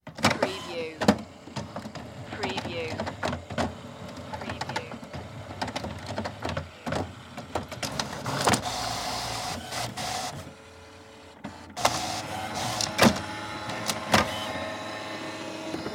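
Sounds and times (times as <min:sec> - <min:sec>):
copier printer making copies: 0:00.0 - 0:15.9.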